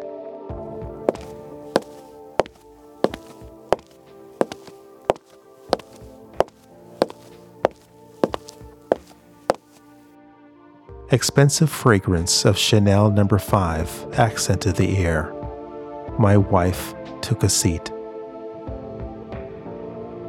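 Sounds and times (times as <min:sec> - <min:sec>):
hard clicking footsteps entering a room: 0:01.1 - 0:09.9
speech: 0:11.1 - 0:15.4, 0:16.2 - 0:18.0.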